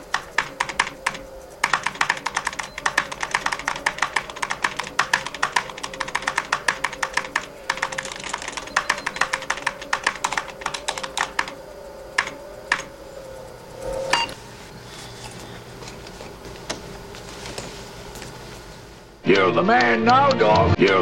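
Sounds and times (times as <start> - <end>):
typing on a computer keyboard: 0.1 - 11.6
speech: 19.5 - 20.9.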